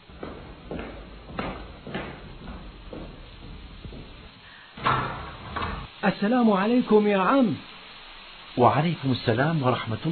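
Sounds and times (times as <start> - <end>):
footsteps walking across a room: 0.0 - 5.9
speech: 6.0 - 7.7, 8.6 - 10.1.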